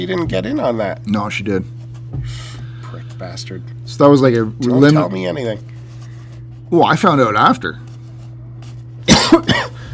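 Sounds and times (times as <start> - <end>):
speech: 0.0 - 5.7, 6.7 - 7.8, 9.3 - 9.6
steady low hum: 0.0 - 9.9
fake forced throaty coughs: 9.1 - 9.9.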